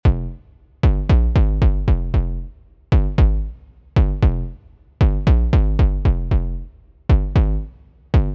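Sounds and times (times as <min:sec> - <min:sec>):
modern tech house music: 0:00.0 - 0:08.3.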